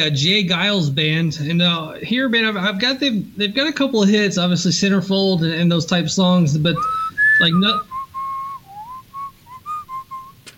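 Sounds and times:
speech: 0:00.0 - 0:08.0
person whistling a tune: 0:06.8 - 0:10.4.

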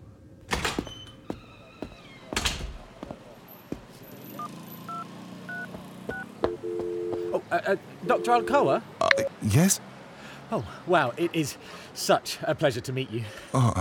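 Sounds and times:
phone number dialed on a keypad with electronic touch tones: 0:04.4 - 0:07.4, 0:08.0 - 0:09.3
longer steady telephone tone: 0:04.9 - 0:07.4, 0:08.0 - 0:09.3
speech: 0:07.5 - 0:09.9, 0:10.5 - 0:13.7.

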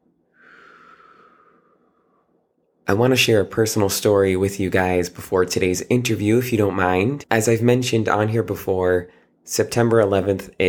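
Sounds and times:
person taking a slow deep breath: 0:00.2 - 0:02.5
speech: 0:02.9 - 0:10.6.

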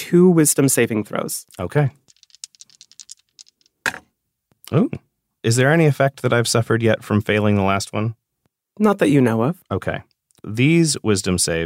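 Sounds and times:
speech: 0:00.1 - 0:02.1, 0:04.7 - 0:08.2, 0:08.8 - 0:11.6
dice rattling: 0:01.5 - 0:04.0.

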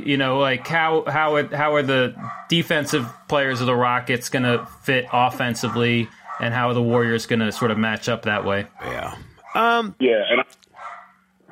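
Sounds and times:
speech: 0:00.0 - 0:10.6
dogs barking: 0:00.4 - 0:01.1, 0:01.8 - 0:09.7, 0:10.7 - 0:11.5
dog yelping: 0:02.2 - 0:02.5, 0:05.6 - 0:07.0, 0:10.8 - 0:11.5.

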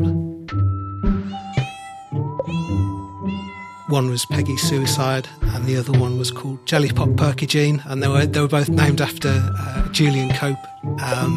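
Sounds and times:
kitten about a year old meowing: 0:01.2 - 0:04.6
speech: 0:03.9 - 0:11.3.

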